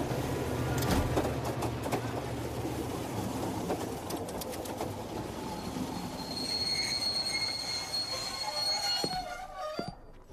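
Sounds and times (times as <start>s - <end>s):
passenger train pulling into a snowy mountain railway station: 0.0s - 10.3s
high-pitched train wheel squeals: 5.4s - 10.1s.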